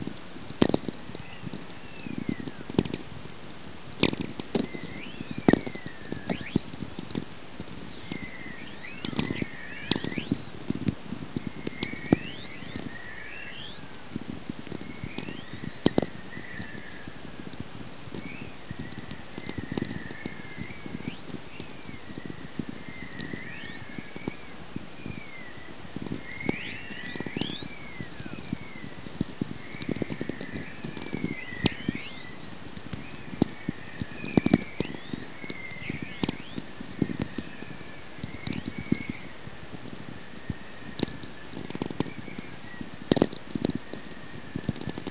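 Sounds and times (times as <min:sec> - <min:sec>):
VLF radio whistlers with aurora in Alaska: 0:00.8 - 0:03.1, 0:04.0 - 0:45.0.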